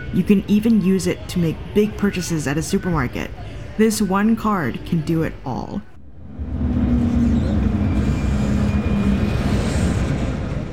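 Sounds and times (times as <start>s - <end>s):
speech: 0.1s - 5.9s
MTR train running in Hong Kong: 6.0s - 10.7s.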